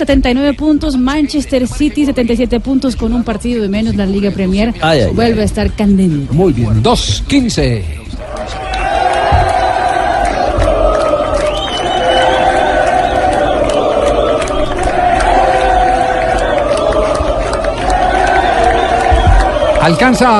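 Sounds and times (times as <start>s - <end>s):
drum-like thumps in a stadium: 0.0s - 1.0s, 5.1s - 7.6s, 8.8s - 11.6s, 17.1s - 20.0s
speech: 0.0s - 8.6s, 19.9s - 20.3s
football fans shouting in a stadium: 8.2s - 20.3s
large crowd of football fans singing a club chant in a stadium: 8.2s - 20.3s.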